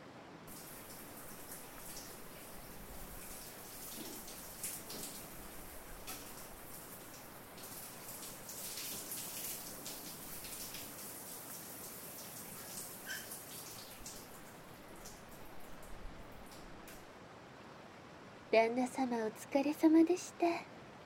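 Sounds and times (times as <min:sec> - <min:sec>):
water pouring and splashing as a body is rinsed during bathing: 0:00.5 - 0:15.8
speech: 0:18.6 - 0:20.7.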